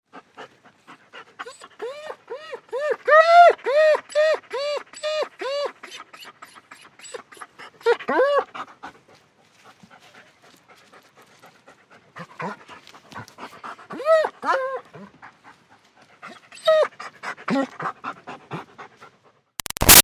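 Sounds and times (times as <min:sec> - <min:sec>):
German Shepherd dog panting: 0:00.1 - 0:03.0, 0:03.7 - 0:19.5
German Shepherd dog whining: 0:01.4 - 0:08.5, 0:13.9 - 0:15.1, 0:16.3 - 0:17.8.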